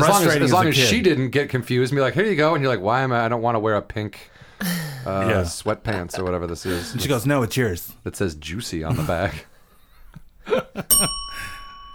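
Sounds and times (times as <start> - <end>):
speech: 0.0 - 9.5, 10.4 - 11.5
bright bell ringing: 10.9 - 11.9.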